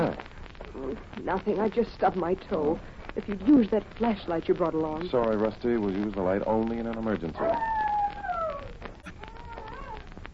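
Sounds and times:
speech: 0.9s - 7.8s
dog howling: 7.4s - 10.1s.

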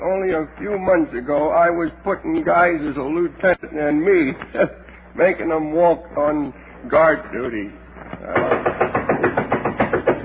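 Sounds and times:
speech: 0.0s - 8.7s
knocking at a bank door at night: 8.3s - 10.2s.

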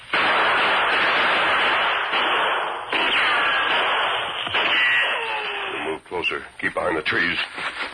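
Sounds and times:
gunshot sound effect in an audio drama: 0.0s - 5.7s
speech: 6.2s - 7.8s.

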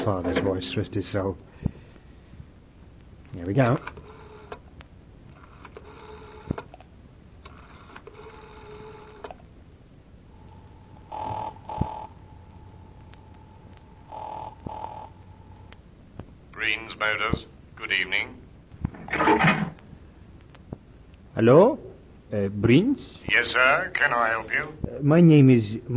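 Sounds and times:
speech: 0.0s - 1.8s, 3.3s - 4.0s, 22.7s - 25.9s
faint steady hum: 0.0s - 25.9s
buzzy telephone ringing on the line: 5.4s - 6.5s, 7.6s - 9.3s, 10.3s - 15.7s
tinny telephone ringback tone: 10.3s - 15.5s.

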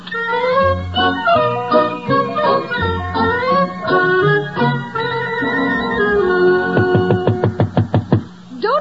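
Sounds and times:
orchestral overture: 0.3s - 7.6s
sharp knocks on a door: 6.8s - 8.3s.

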